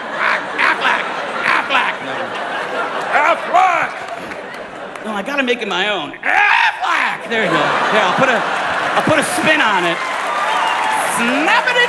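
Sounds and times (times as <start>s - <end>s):
laughter: 0.0s - 11.8s
person doing a nasal duck-quack imitation: 0.2s - 0.8s
speech: 3.1s - 4.4s, 5.0s - 10.1s, 11.2s - 11.8s.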